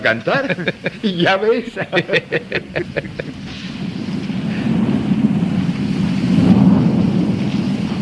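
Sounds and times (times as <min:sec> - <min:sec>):
laughter: 0:00.0 - 0:03.6
speech: 0:00.0 - 0:03.7
steady rain pouring down: 0:00.0 - 0:08.0
deep rolling rumble of thunder: 0:02.5 - 0:08.0.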